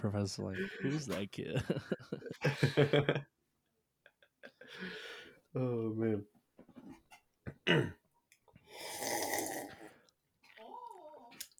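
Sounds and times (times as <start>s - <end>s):
speech: 0.0s - 3.4s, 4.7s - 6.3s, 7.7s - 8.0s
laughter: 0.6s - 3.3s
slurping sip of water: 8.6s - 11.5s.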